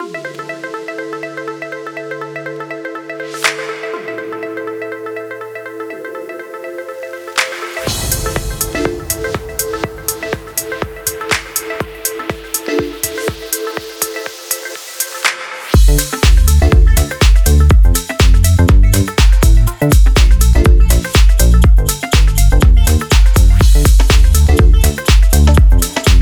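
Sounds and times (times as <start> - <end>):
chillout music: 0.0 - 26.1.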